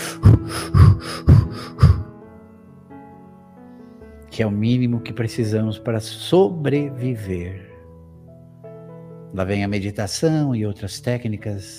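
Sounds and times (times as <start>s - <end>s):
short shallow breaths: 0.0s - 2.1s
speech: 4.4s - 7.7s, 9.3s - 11.7s.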